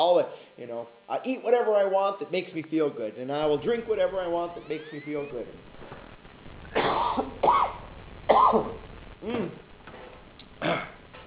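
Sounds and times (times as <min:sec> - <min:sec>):
speech: 0:00.0 - 0:05.9, 0:08.3 - 0:09.6, 0:10.6 - 0:10.9
person coughing: 0:06.7 - 0:09.6, 0:10.6 - 0:11.0
person clearing throat: 0:06.7 - 0:09.7, 0:10.6 - 0:11.0.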